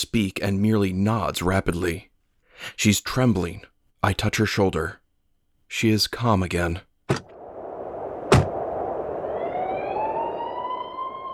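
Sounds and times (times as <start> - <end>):
speech: 0.0 - 5.0, 5.7 - 7.2
sharp knocks: 7.1 - 7.3, 8.3 - 8.5
emergency sirens wailing: 7.3 - 11.3.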